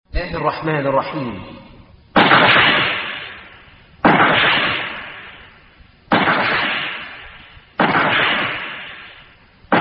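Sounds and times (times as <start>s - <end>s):
speech: 0.2s - 1.6s
heavy cannon blasts: 2.1s - 9.7s.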